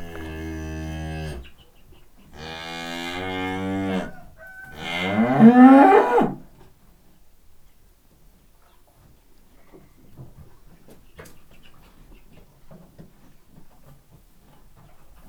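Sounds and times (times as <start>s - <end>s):
Hungarian Simmental cow mooing in a farmyard: 0.0s - 1.5s, 2.4s - 6.4s
rooster in a farmyard: 3.4s - 6.4s.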